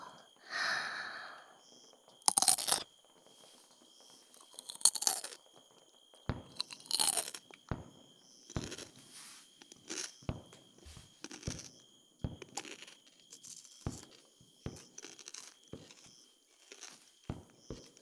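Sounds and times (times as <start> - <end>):
soft breath: 0.0 - 1.6
someone biting and chewing fresh cucumber: 2.1 - 2.9, 4.3 - 5.4, 6.5 - 7.6, 8.6 - 9.0, 9.6 - 10.2, 11.2 - 11.8, 12.4 - 14.2, 14.8 - 18.0.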